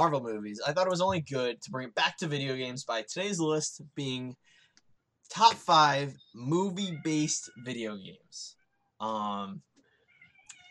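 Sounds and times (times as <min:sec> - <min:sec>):
speech: 0:00.0 - 0:04.6, 0:05.3 - 0:09.7
unhappy cat meowing while being held: 0:06.7 - 0:07.7.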